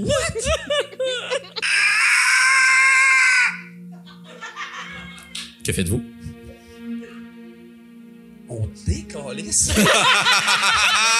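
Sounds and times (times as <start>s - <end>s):
people giggling: 0.0s - 1.9s, 4.0s - 5.4s, 9.6s - 11.1s
people laughing: 0.0s - 2.2s, 4.0s - 5.4s, 9.4s - 11.1s
huge monster screaming sound effect: 1.6s - 3.8s
speech: 5.6s - 6.1s, 8.9s - 11.1s.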